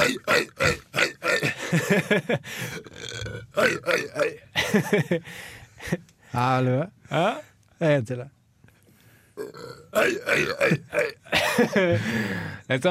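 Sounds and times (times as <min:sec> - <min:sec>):
person making exaggerated deliberate comic burps: 0:00.0 - 0:04.9, 0:09.4 - 0:11.9
speech: 0:00.1 - 0:00.8, 0:01.7 - 0:08.4, 0:09.4 - 0:12.8.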